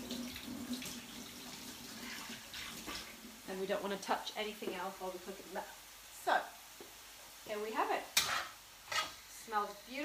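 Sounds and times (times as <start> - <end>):
running tap water while hands are washed during cooking: 0.0 - 5.0
speech: 3.6 - 6.6, 7.5 - 8.1, 9.5 - 10.0.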